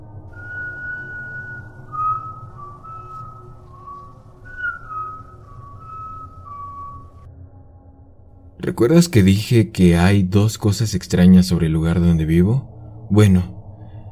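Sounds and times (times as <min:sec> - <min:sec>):
low rumble: 0:00.0 - 0:14.1
person whistling a bright cheerful melody: 0:00.3 - 0:07.3
speech: 0:08.6 - 0:13.6.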